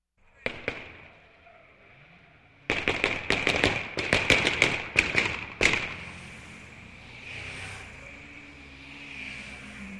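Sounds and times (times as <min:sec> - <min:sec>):
flare gun shots: 0:02.7 - 0:06.1.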